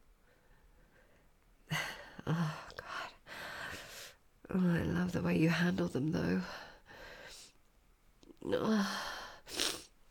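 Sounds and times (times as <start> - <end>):
speech: 4.5 - 6.7, 8.5 - 9.1
breathy sniffling: 9.4 - 9.9.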